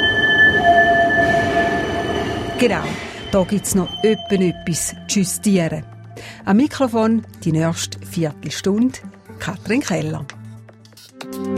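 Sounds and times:
new tram on a test run rolling past: 0:00.0 - 0:06.2
speech: 0:02.6 - 0:10.4.

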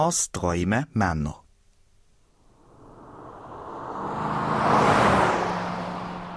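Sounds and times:
speech: 0:00.0 - 0:01.4
fast car driving past: 0:02.4 - 0:06.3.

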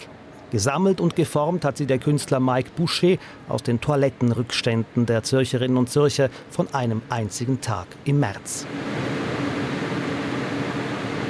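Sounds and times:
speech: 0:00.5 - 0:09.2
two exhaust ventilation fans whooshing loudly: 0:08.2 - 0:11.2
low hum: 0:08.6 - 0:11.2.

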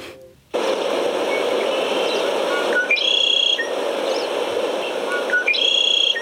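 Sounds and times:
hushed forest ambience: 0:00.6 - 0:06.2
birds singing high chirping phrases: 0:01.3 - 0:06.2.

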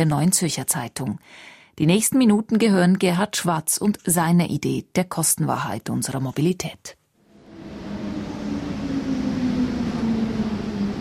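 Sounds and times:
speech: 0:00.0 - 0:07.0
train passing through a station: 0:07.2 - 0:10.9.

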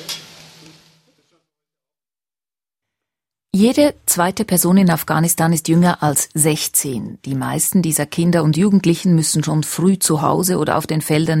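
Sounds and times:
cauliflower, potatoes and onions frying in Tamil-spiced chickpea batter: 0:00.0 - 0:01.1
speech: 0:03.6 - 0:11.3.

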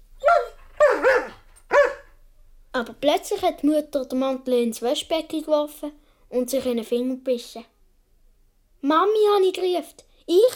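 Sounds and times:
dog barking: 0:00.2 - 0:02.2
speech: 0:02.8 - 0:07.7, 0:08.8 - 0:10.5.

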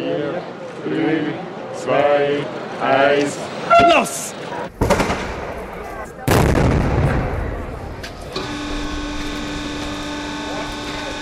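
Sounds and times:
crowd noise: 0:00.0 - 0:11.2
speech: 0:00.8 - 0:04.8
ceremonial celebratory cannon shots: 0:04.8 - 0:08.0
steady mechanical hum: 0:08.1 - 0:11.2.

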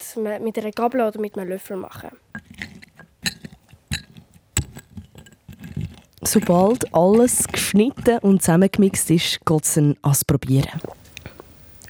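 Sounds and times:
speech: 0:00.1 - 0:02.6, 0:06.3 - 0:11.0
cocktail muddler crushing diced lime in a glass: 0:00.6 - 0:09.4, 0:10.7 - 0:11.8.

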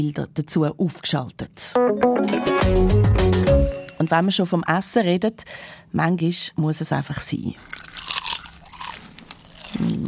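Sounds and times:
speech: 0:00.0 - 0:08.1
crunching salty, sour and paprika flavoured potato chips: 0:07.6 - 0:10.0.

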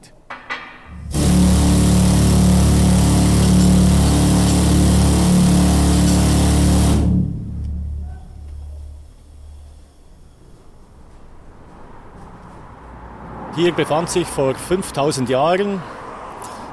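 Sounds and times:
miner's powerful rock drill roaring in a Swiss mine: 0:00.9 - 0:09.8
low rumble: 0:00.9 - 0:11.0
speech: 0:13.6 - 0:16.0.

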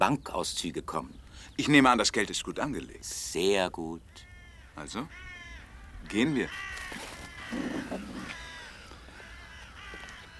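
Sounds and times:
speech: 0:00.0 - 0:05.3, 0:06.0 - 0:08.4
outdoor noise: 0:00.0 - 0:10.3
ravens cawing: 0:04.1 - 0:10.3.

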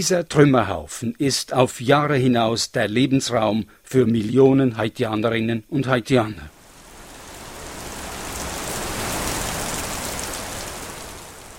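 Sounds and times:
speech: 0:00.0 - 0:06.6
heavy tropical rain pouring in Haiti at the start of the hurricane season: 0:06.5 - 0:11.5.

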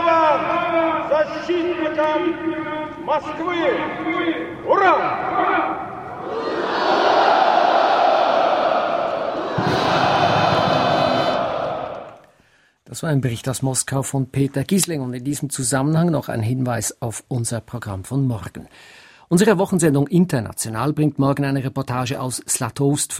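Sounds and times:
amplified voices echoing across Red Square in Moscow during military parade: 0:00.0 - 0:12.3
speech: 0:01.3 - 0:06.5, 0:13.0 - 0:23.1
large crowd cheering at military parade on Red Square in Moscow: 0:06.1 - 0:12.3.

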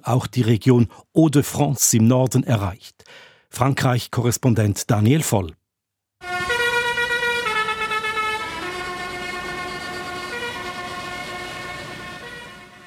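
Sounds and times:
speech: 0:00.0 - 0:05.6
tractor horns blaring at a farmers' protest: 0:06.2 - 0:12.8.

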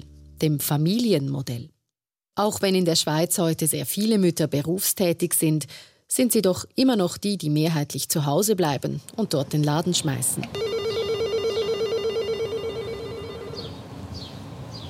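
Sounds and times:
speech: 0:00.4 - 0:01.8, 0:02.4 - 0:10.9
steady electronic tone with ringing chirps: 0:10.6 - 0:13.8.

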